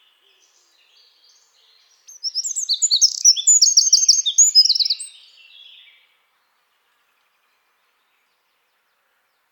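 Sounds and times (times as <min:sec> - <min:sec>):
Eurasian wren Troglodytes troglodytes singing: 0:00.4 - 0:05.7.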